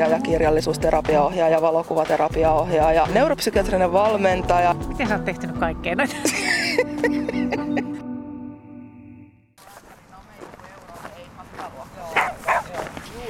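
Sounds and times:
speech: 0.0 - 7.9
laughter: 6.0 - 8.0
dog barking and yipping at a dog park: 12.1 - 12.8.

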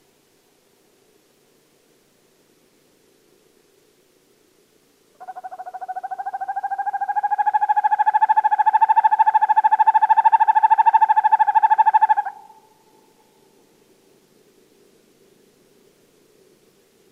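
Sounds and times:
northern hawk owl rolling trill: 5.2 - 12.7.

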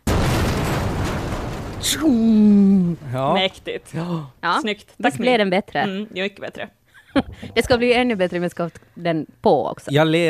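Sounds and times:
sharp crack of a lightning strike: 0.0 - 3.9
thunder rumbling: 0.0 - 4.4
speech: 1.8 - 10.2.

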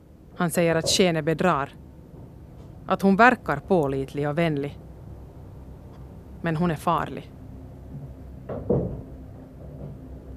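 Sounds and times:
low steady hum: 0.0 - 10.3
speech: 0.4 - 1.8, 2.9 - 4.8, 6.4 - 7.4
dull knocking on a door: 8.0 - 9.1.

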